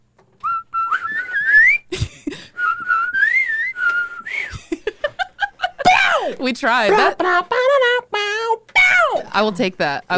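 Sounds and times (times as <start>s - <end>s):
two people whistling a cartoon theme tune: 0.4s - 1.9s, 2.6s - 4.5s
laughter: 4.4s - 8.2s
speech: 6.4s - 7.7s, 9.3s - 10.1s.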